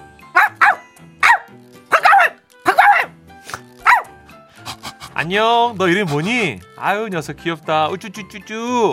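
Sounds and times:
white Jindo dog barking: 0:00.3 - 0:03.2, 0:03.8 - 0:04.2
speech: 0:05.2 - 0:08.9.

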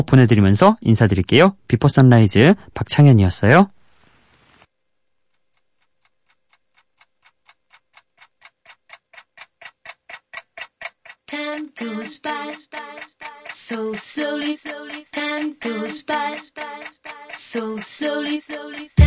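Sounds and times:
speech: 0:00.0 - 0:03.8, 0:13.7 - 0:19.0
clock ticking: 0:05.2 - 0:19.0
synth-heavy dance track built on a sample of an older pop song: 0:11.3 - 0:19.0.

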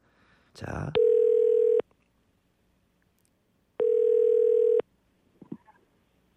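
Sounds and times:
speech: 0:00.6 - 0:01.4
electronic telephone ringback tone while call connects: 0:01.0 - 0:01.8, 0:03.8 - 0:04.8.

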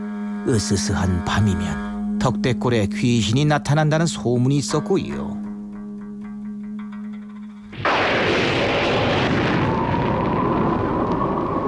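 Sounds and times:
speech: 0:00.4 - 0:05.4
thunder: 0:07.7 - 0:11.6
wind howling: 0:07.8 - 0:11.6.

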